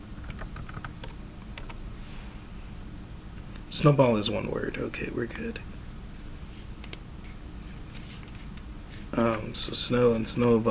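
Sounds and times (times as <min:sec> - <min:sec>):
steady low hum: 0:00.0 - 0:10.6
computer keyboard typing: 0:00.2 - 0:01.8
speech: 0:03.7 - 0:05.7, 0:09.2 - 0:10.6.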